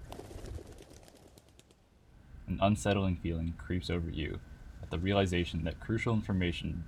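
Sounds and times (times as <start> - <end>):
pigeon wings fluttering overhead: 0.0 - 1.9
speech: 2.5 - 6.8.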